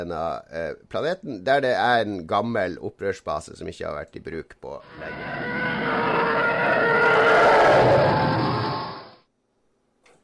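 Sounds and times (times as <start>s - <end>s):
speech: 0.0s - 6.2s
sci-fi starfighter flyby from pitched-down elephant: 4.9s - 9.2s.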